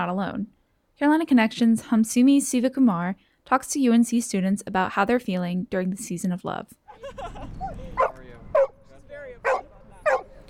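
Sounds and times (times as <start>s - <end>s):
speech: 0.0s - 8.1s
laughter: 6.9s - 8.6s
dog barking: 7.6s - 8.8s, 9.4s - 10.4s.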